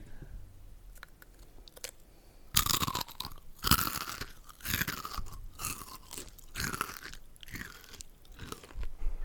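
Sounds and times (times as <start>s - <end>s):
crunching a crisp snack: 0.9s - 8.9s.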